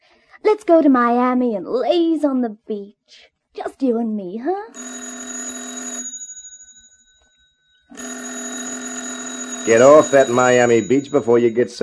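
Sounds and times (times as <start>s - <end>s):
speech: 0.5s - 5.0s, 9.6s - 11.8s
telephone bell ringing with a harsh metallic jangle: 4.7s - 11.8s.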